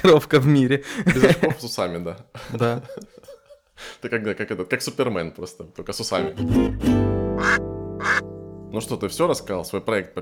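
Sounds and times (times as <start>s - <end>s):
speech: 0.0s - 7.7s, 8.7s - 10.2s
laughter: 1.0s - 1.6s, 2.5s - 3.7s
geese honking: 7.4s - 8.3s.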